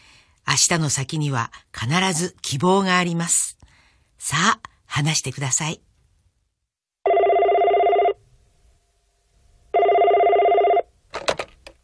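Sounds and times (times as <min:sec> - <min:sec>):
speech: 0:00.5 - 0:03.6, 0:04.2 - 0:05.9
telephone bell ringing: 0:07.1 - 0:08.2, 0:09.7 - 0:10.9.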